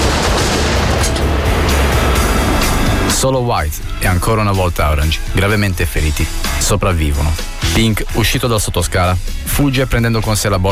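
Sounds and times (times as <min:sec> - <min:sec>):
gunshot sound effects from a standoff: 0:00.0 - 0:03.2
speech: 0:03.2 - 0:10.7.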